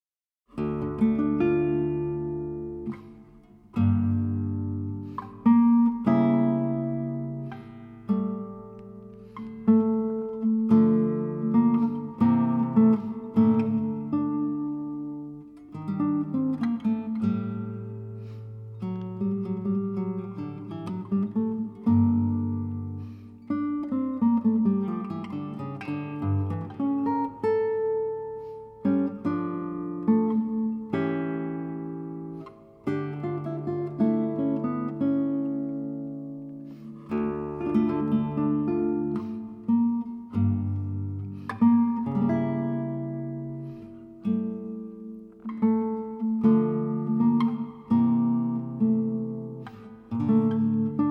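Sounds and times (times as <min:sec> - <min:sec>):
sarabande guitar piece: 0:00.5 - 0:51.0.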